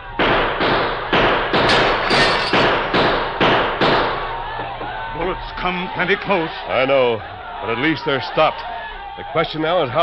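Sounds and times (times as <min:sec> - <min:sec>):
gunshots fired into the air: 0:00.2 - 0:04.2
speech: 0:05.6 - 0:10.0.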